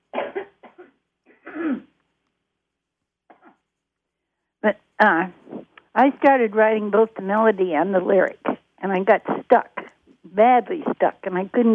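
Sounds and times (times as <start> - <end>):
person coughing raspy hacking coughs: 0.2 - 1.9
speech: 4.6 - 5.4, 6.0 - 9.7, 10.3 - 11.7.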